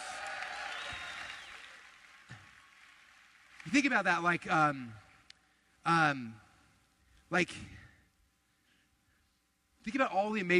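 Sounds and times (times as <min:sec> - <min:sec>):
audience applause: 0:00.0 - 0:04.2
speech: 0:03.7 - 0:05.0, 0:05.8 - 0:06.4, 0:07.3 - 0:07.8, 0:09.8 - 0:10.5.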